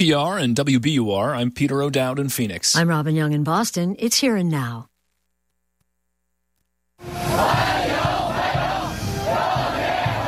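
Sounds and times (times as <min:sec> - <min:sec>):
speech: 0:00.0 - 0:04.9
Chinese teenagers chanting a welcome in unison: 0:07.0 - 0:10.2.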